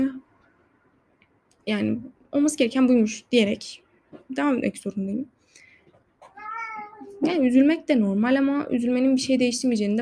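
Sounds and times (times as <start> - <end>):
speech: 1.6 - 5.4, 7.2 - 9.9
cat meowing: 6.2 - 7.3.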